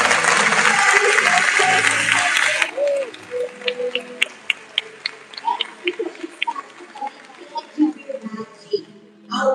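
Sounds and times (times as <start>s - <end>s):
audience applause: 0.0s - 8.6s
voices talking and murmuring in the room: 0.4s - 9.5s.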